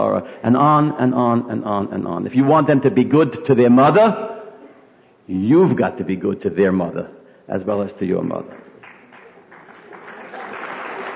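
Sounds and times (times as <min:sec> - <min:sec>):
speech: 0:00.0 - 0:04.3, 0:05.3 - 0:08.7
audience applause: 0:08.6 - 0:11.1.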